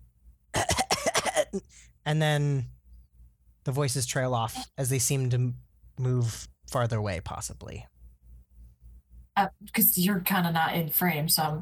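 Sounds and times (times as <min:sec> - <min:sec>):
person coughing harshly: 0:00.5 - 0:01.8
speech: 0:01.5 - 0:02.8, 0:03.6 - 0:07.9, 0:09.4 - 0:11.5.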